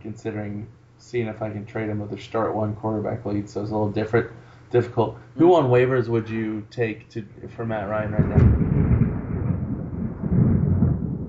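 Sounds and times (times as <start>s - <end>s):
speech: 0.0s - 8.9s
thunder rumbling: 7.5s - 11.2s.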